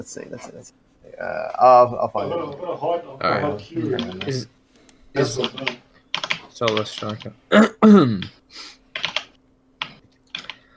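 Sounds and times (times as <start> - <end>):
speech: 0.0 - 5.9, 6.6 - 8.8
computer keyboard typing: 3.8 - 4.4, 5.3 - 7.3, 8.9 - 10.7.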